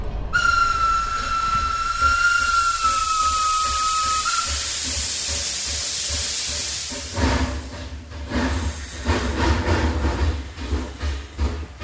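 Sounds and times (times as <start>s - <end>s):
train whistle: 0.3s - 5.5s
train hissing: 0.3s - 11.7s.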